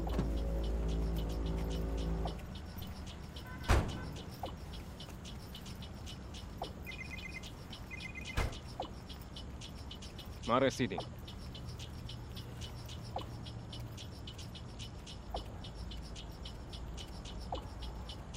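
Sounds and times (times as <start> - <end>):
short electronic chirps: 0.0 - 16.3
car engine rumbling: 0.0 - 18.3
faint outdoor noise: 0.0 - 18.3
car doors closing: 3.4 - 4.2
speech: 10.5 - 11.2.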